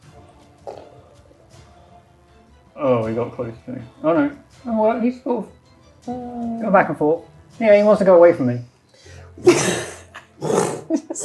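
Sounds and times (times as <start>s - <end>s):
speech: 2.8s - 8.7s, 9.4s - 11.2s
voice imitating the bellowing roar of an undead dragon monster: 10.4s - 11.2s.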